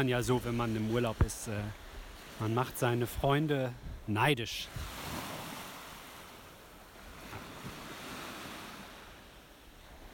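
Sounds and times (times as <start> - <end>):
speech: 0.0 - 1.8, 2.4 - 5.0
Baltic Sea waves breaking on a beach: 0.0 - 10.1
wind buffeting the microphone: 0.0 - 10.1.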